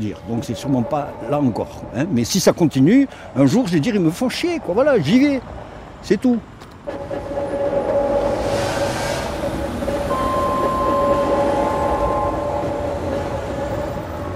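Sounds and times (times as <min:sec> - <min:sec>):
speech: 0:00.0 - 0:07.0
train travelling at speed rolling rumble: 0:00.0 - 0:14.3
train sustained tonal whine: 0:10.0 - 0:14.0.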